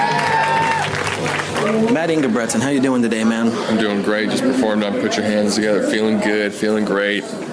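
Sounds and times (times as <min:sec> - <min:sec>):
audience clapping and cheering for a comedian coming to the stage: 0:00.0 - 0:02.8
speech: 0:02.0 - 0:07.5.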